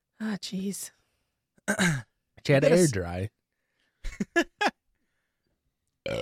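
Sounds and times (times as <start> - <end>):
speech: 0.2 - 1.0, 1.7 - 3.4, 4.0 - 4.5
person burping: 1.7 - 2.1, 6.0 - 6.2.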